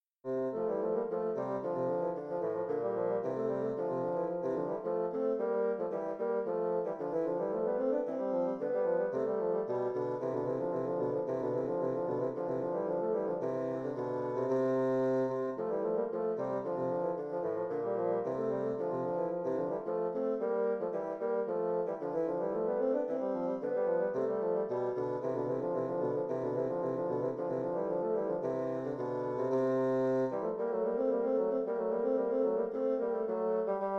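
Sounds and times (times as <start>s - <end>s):
bassoon duet playing an allemande: 0.3s - 33.9s.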